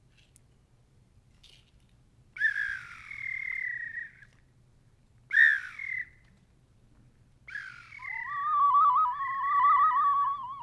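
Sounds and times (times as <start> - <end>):
bird calls on a small carved cedar wood whistle: 7.5 - 10.6.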